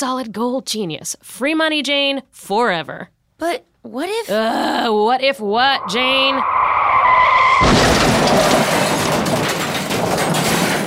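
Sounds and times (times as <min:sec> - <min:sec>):
speech: 0:00.0 - 0:06.7
bus tire screech while skidding: 0:05.6 - 0:09.3
bus crashing into pole: 0:05.6 - 0:10.8
rumbling clattering impact debris from bus crash: 0:06.9 - 0:10.8.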